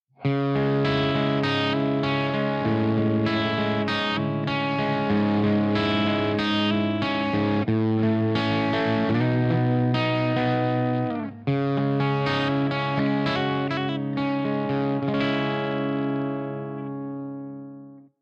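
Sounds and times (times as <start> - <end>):
clean electric guitars on bridge pickup: 0.2 - 18.1.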